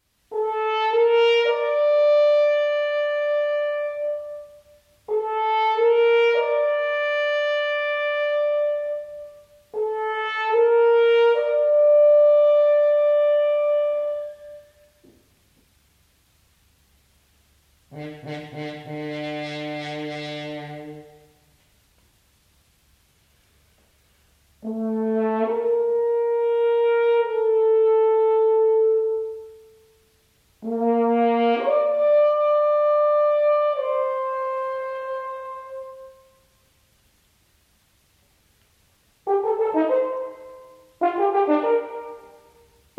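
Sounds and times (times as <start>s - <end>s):
horn call: 0.3s - 15.0s, 17.9s - 21.4s, 24.6s - 29.8s, 30.6s - 36.6s, 39.2s - 42.9s.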